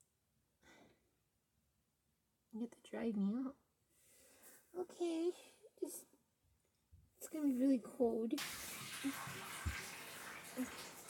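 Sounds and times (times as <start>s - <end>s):
speech: 2.6s - 3.6s, 4.7s - 6.1s, 7.2s - 9.6s, 10.6s - 10.9s
water draining from a bathtub: 8.4s - 11.0s.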